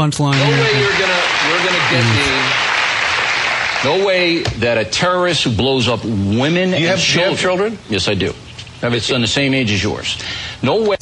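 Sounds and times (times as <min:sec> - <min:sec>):
speech: 0:00.0 - 0:02.7, 0:03.8 - 0:11.0
studio audience applauding at a late-night talk show: 0:00.4 - 0:04.3.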